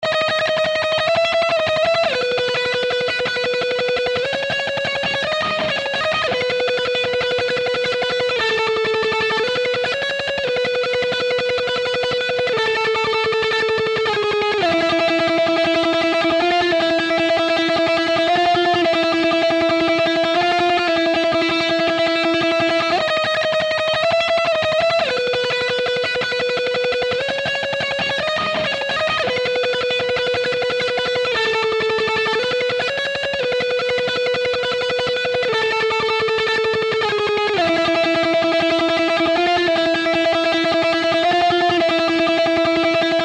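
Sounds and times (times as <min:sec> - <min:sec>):
rock lead: 0:00.0 - 0:43.2.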